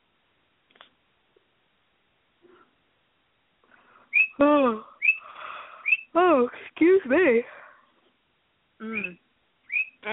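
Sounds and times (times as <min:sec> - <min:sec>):
pet birds chirping with high whistled chirps: 0:04.0 - 0:06.2, 0:08.8 - 0:10.0
pet bird squawky call sliding downward: 0:04.1 - 0:04.4, 0:05.0 - 0:06.1, 0:08.9 - 0:10.0
speech: 0:04.4 - 0:04.9, 0:06.4 - 0:07.6, 0:08.8 - 0:09.2.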